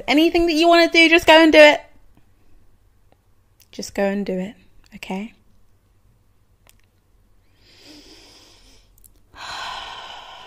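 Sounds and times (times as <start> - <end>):
speech: 0.0 - 1.8, 3.8 - 5.4
deep breath: 7.4 - 10.4.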